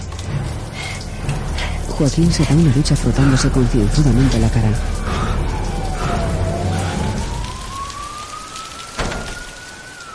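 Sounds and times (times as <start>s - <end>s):
torrential rain hissing in the street: 0.0s - 10.1s
speech: 1.9s - 5.0s
ambulance or police vehicle siren wailing in the street: 2.2s - 10.1s
sharp splash or thud: 9.0s - 9.5s.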